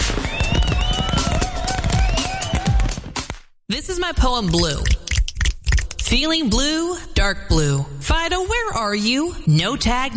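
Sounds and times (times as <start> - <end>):
fireworks sharp bursts and low booms: 0.0 - 3.0
whistling rockets rising: 0.0 - 3.0
fireworks crackling and popping: 0.0 - 3.4
speech: 4.0 - 5.0, 6.1 - 10.1.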